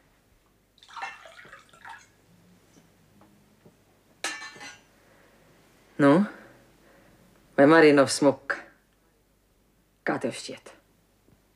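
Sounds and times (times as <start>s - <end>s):
sharp glassy clink: 0.8s - 2.1s, 4.2s - 4.9s
wine gurgling and splashing into a glass: 0.8s - 2.2s
speech: 6.0s - 6.4s, 7.6s - 8.6s, 10.3s - 10.8s.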